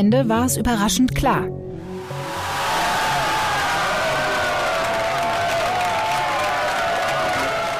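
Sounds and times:
speech: 0.0 - 1.8
large crowd of CDU supporters applauding at a state election party: 2.2 - 7.7.

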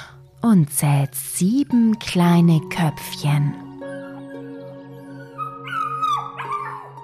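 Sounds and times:
speech: 0.4 - 3.6
silver-grey puppies whimpering and yelping: 5.2 - 7.0.

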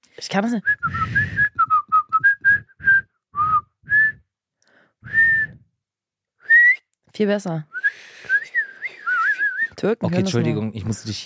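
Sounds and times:
speech: 0.0 - 1.6, 7.2 - 8.2, 9.8 - 11.2
person whistling a tune: 0.7 - 4.3, 5.0 - 5.7, 6.4 - 6.9, 7.8 - 9.8.

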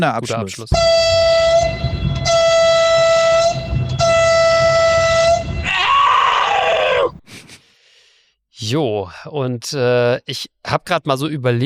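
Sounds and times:
speech: 0.0 - 1.3, 8.6 - 11.6
loud horn blasts: 0.7 - 6.4
shorter wavering horn tone: 0.7 - 7.2.

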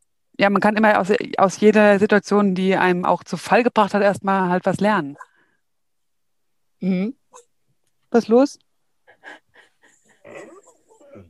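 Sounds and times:
speech: 0.4 - 5.3, 6.8 - 7.5, 8.1 - 8.6
dog whining and grumbling: 10.0 - 11.2.

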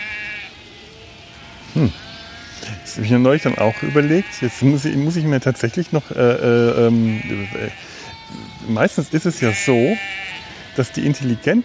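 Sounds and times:
sheep bleating: 0.0 - 11.6
steady low noise: 0.0 - 11.6
speech: 1.8 - 2.1, 2.8 - 11.6.

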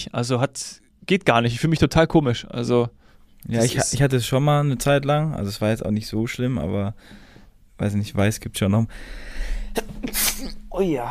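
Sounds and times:
speech: 0.0 - 7.2, 7.8 - 11.0
low hum: 0.1 - 11.0
sneeze: 9.8 - 10.7.

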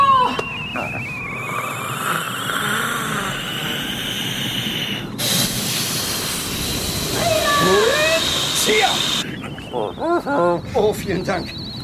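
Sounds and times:
squeaky whistling tones: 0.0 - 5.0, 6.4 - 11.8
dinosaur blowing hard to blow out a volcano: 1.1 - 9.5
speech: 10.2 - 11.6.

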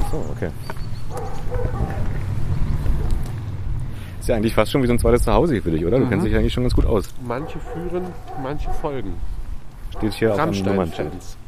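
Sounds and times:
dog of an electronics shop in Brandenburg barking with short yaps: 0.0 - 0.3, 1.1 - 2.1, 2.9 - 3.3, 7.3 - 9.0, 9.9 - 11.4
speech: 0.1 - 0.8, 4.2 - 9.4, 10.0 - 11.4.

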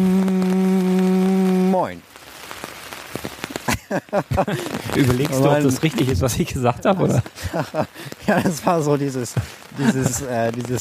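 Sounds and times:
loud steady droning tone: 0.0 - 1.7
rain patter on a surface: 0.0 - 10.8
laughter: 3.6 - 10.8
speech: 3.9 - 10.8.

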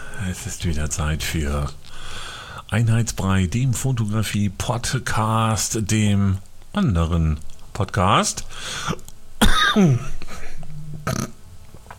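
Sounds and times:
speech: 0.2 - 9.1, 9.8 - 10.2, 11.1 - 11.3
person coughing: 8.9 - 11.3.

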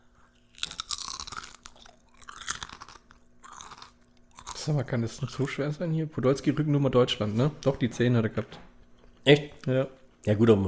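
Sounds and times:
potato chips being chewed: 0.0 - 5.6
speech: 4.7 - 10.6.

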